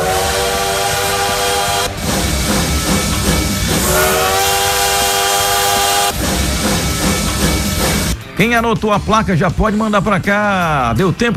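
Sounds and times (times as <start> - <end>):
constant hissing rattling roar of train: 0.0 - 8.2
loud train rumbling past: 0.0 - 8.2
train steam whistle in long sustained blasts: 0.0 - 8.2
speech: 8.4 - 11.3.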